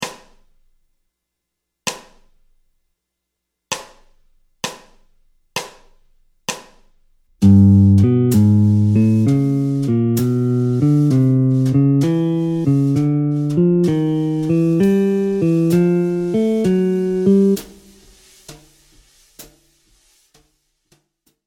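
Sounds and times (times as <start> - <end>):
jazz guitar playing ascending bebop scale in G Lydian flat seven: 7.4 - 17.9.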